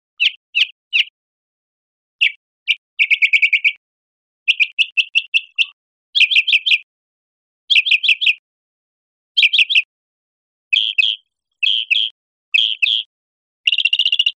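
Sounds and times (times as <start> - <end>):
Northern mockingbird singing varied high phrases: 0.2 - 1.2, 2.2 - 3.8, 4.5 - 6.9, 7.7 - 8.4, 9.4 - 9.9, 10.7 - 14.3.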